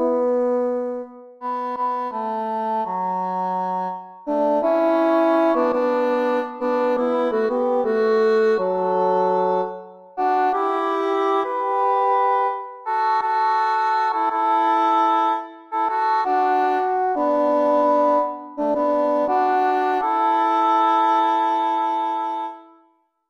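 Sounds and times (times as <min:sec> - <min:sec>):
alto and tenor singing: 0:00.2 - 0:22.6.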